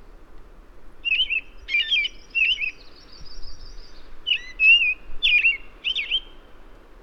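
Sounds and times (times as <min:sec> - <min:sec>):
American robin Turdus migratorius caroling whistled phrases: 0:01.0 - 0:06.4.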